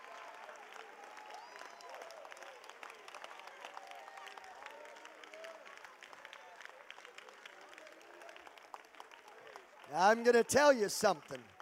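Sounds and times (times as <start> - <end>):
large audience clapping hands: 0.0 - 11.6
speech: 9.9 - 11.5.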